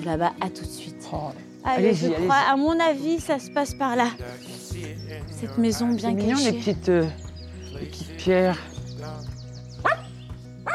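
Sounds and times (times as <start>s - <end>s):
speech: 0.0s - 10.0s
dog barking while running toward visitors at a house: 9.8s - 10.7s.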